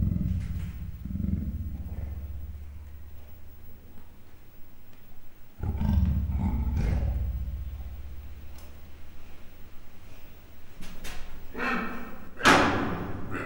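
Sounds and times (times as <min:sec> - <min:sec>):
captive leopards growling at a zoo in Miskolc: 0:00.0 - 0:03.9, 0:05.6 - 0:09.6
faint hum: 0:00.0 - 0:13.4.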